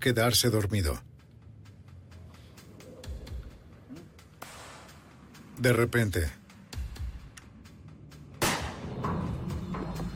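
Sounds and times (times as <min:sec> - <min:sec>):
speech: 0:00.0 - 0:01.1, 0:05.6 - 0:06.4
low rumbling background: 0:00.0 - 0:10.1
gunshot sound effect: 0:08.4 - 0:09.0.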